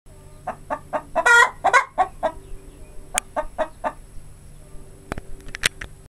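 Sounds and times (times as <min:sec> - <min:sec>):
hen clucking: 0:00.1 - 0:05.2.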